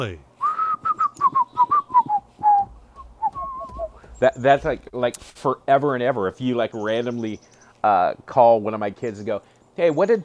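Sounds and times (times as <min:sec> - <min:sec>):
speech: 0:00.0 - 0:00.3, 0:04.2 - 0:10.2
person whistling a folk song tune: 0:00.4 - 0:04.0.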